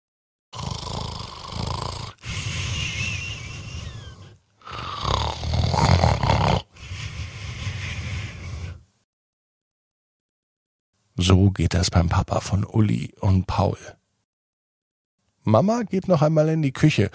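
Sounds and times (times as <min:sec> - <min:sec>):
man snoring loudly while asleep: 0:00.5 - 0:08.8
speech: 0:11.2 - 0:14.0, 0:15.4 - 0:17.1.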